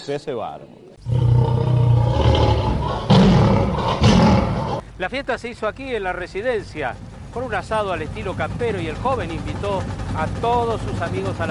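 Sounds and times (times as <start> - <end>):
speech: 0.0 - 1.2, 5.0 - 11.4
lion roaring: 1.0 - 4.8.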